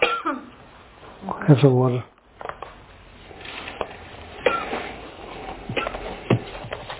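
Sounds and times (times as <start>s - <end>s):
short rough coughs: 0.0s - 0.5s, 4.4s - 4.9s
soft shuffling and handling noises: 2.4s - 6.9s
throat clearing: 4.4s - 4.9s, 5.7s - 6.0s.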